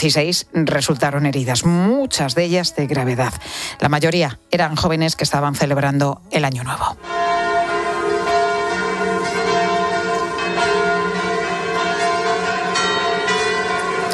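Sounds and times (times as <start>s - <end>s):
speech: 0.0s - 7.3s
church bells ringing during memorial ceremonies at a ski resort: 7.0s - 14.1s.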